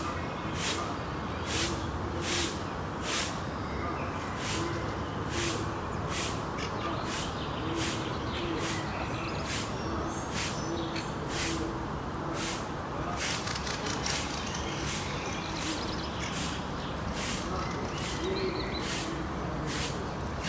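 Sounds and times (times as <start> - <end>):
low hum of traffic in a city market square: 0.0 - 20.4.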